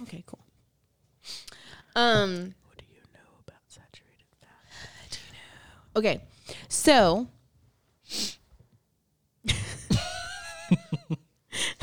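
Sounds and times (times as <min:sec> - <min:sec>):
speech: 0:00.1 - 0:00.4, 0:02.0 - 0:02.6, 0:06.0 - 0:07.4
congested person sniffing: 0:08.1 - 0:08.4
short sharp puffs of breath: 0:08.1 - 0:08.5.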